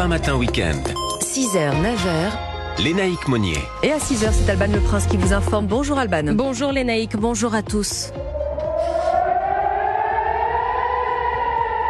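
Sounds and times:
speech: 0.0s - 8.3s
air raid warning sirens wailing at night in Israel during an Iranian attack: 8.2s - 11.8s.

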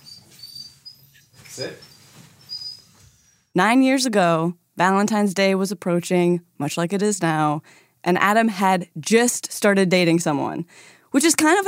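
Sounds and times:
dog whimpering: 0.0s - 3.5s
dog shuffling: 0.2s - 3.1s
speech: 1.6s - 1.9s, 3.6s - 11.6s.

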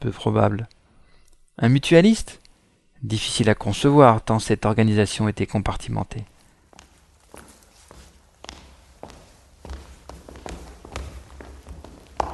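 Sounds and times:
speech: 0.0s - 0.8s, 1.6s - 2.4s, 3.0s - 6.3s
many people's footsteps along a hard corridor floor: 6.3s - 12.3s.

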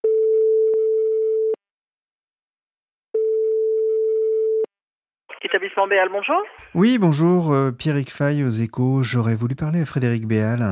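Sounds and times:
phone line ringback tone: 0.0s - 1.6s, 3.2s - 4.7s
speech: 5.5s - 10.6s.

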